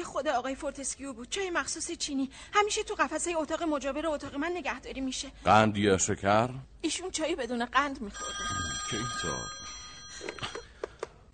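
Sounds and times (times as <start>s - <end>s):
speech: 0.2s - 9.6s
telephone ringing: 8.1s - 10.8s.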